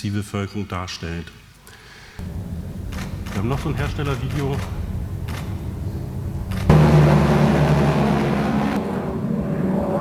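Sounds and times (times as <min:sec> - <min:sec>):
speech: 0:00.0 - 0:01.4, 0:02.2 - 0:02.4, 0:03.4 - 0:04.8
drone propellers whirring: 0:02.2 - 0:10.0.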